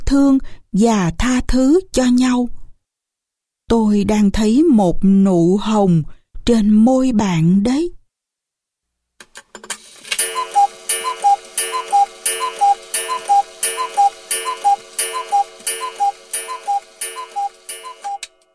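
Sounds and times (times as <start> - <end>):
speech: 0.1 - 2.6, 3.7 - 8.0
wall clock ticking: 10.2 - 18.5.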